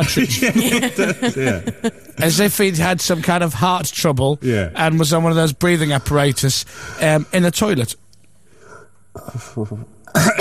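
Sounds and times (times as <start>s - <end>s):
laughter: 0.0s - 2.4s
speech: 0.1s - 8.0s, 9.2s - 10.3s
person coughing from dust in the throat: 9.2s - 10.3s
throat clearing from dust caught in the throat: 9.2s - 10.3s.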